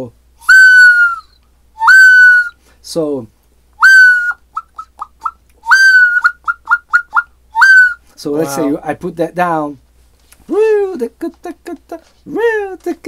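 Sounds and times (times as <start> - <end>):
speech: 0.0 - 0.2, 2.9 - 3.4, 8.2 - 9.8, 10.5 - 13.0
bird-call instrument whistles imitating a bird: 0.4 - 2.6, 3.8 - 8.1.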